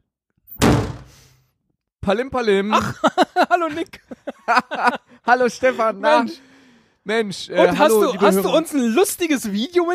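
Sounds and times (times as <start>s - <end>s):
door closing: 0.5s - 1.3s
speech: 2.1s - 6.5s, 7.1s - 9.9s
laughter: 2.7s - 6.4s, 7.6s - 8.7s.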